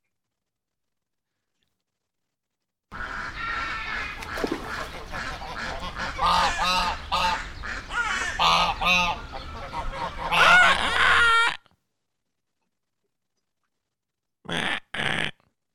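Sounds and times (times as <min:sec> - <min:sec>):
duck call blown in raspy honking quacks: 0:05.1 - 0:11.6, 0:14.5 - 0:15.4.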